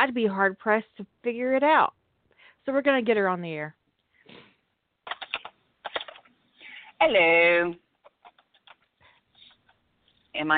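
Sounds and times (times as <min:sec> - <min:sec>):
speech: 0:00.0 - 0:02.0, 0:02.6 - 0:04.4, 0:07.0 - 0:07.8, 0:10.4 - 0:10.5
fast typing on a mechanical keyboard: 0:05.1 - 0:06.2, 0:08.0 - 0:08.8.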